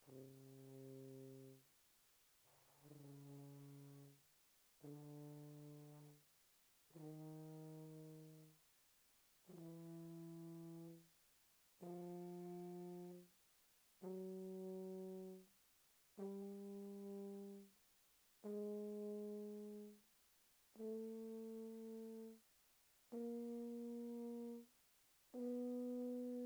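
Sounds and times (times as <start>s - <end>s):
soft tuba notes from C3 to C4: 0.0s - 1.8s, 2.4s - 8.7s, 9.4s - 26.4s.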